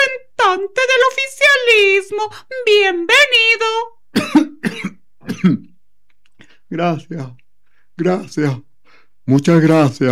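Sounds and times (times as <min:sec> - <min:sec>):
speech: 0:00.5 - 0:05.7, 0:06.7 - 0:07.4, 0:08.0 - 0:08.7, 0:09.3 - 0:10.1
person coughing after choking slightly during an interview: 0:04.1 - 0:05.8
person clearing throat after choking slightly: 0:04.2 - 0:05.8.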